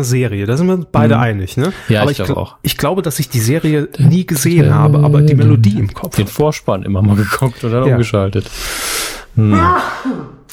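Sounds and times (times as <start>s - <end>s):
speech: 0.0s - 10.4s
sneeze: 9.6s - 10.5s.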